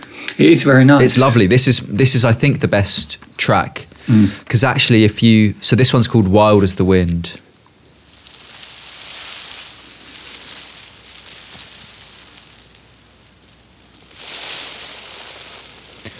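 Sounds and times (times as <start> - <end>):
speech: 0.4 - 7.4
steady broadband white noise hiss: 7.1 - 16.1.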